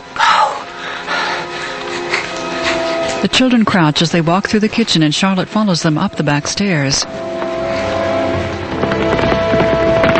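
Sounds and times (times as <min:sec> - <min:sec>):
steady sustained tone: 0:00.0 - 0:10.1
ridden horse hooves clopping past a house: 0:02.1 - 0:10.1
speech: 0:03.2 - 0:07.3.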